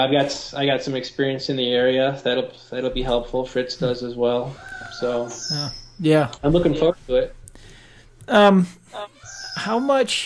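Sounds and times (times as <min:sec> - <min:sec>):
speech: 0:00.0 - 0:07.7, 0:08.3 - 0:10.2
birds squawking and screeching: 0:04.5 - 0:06.0, 0:09.0 - 0:09.8.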